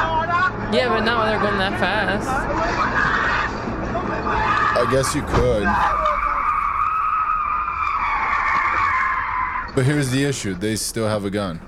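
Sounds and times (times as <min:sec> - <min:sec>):
speeding car engine rumble: 0:00.0 - 0:11.6
speeding car tires skidding and squealing: 0:00.0 - 0:11.6
speech: 0:00.7 - 0:06.0, 0:09.8 - 0:11.6.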